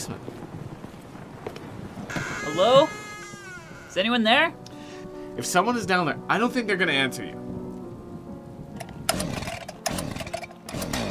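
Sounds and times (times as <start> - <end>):
speech: 0.0 - 0.4, 2.5 - 3.0, 4.0 - 4.6, 5.4 - 7.4
chainsaw starting up: 9.1 - 11.0.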